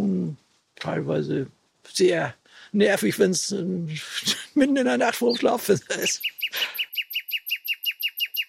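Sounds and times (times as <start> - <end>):
speech: 0.8 - 6.4
Eurasian blackbird singing: 5.0 - 8.4.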